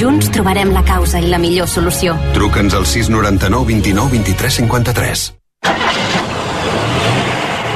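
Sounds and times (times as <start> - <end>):
speech: 0.0 - 5.8
car engine starting and revving: 5.6 - 7.7.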